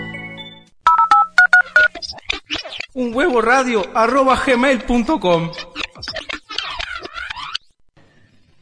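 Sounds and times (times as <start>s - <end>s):
mobile phone keypad dialing tones: 0.9s - 1.9s
speech: 3.0s - 5.6s.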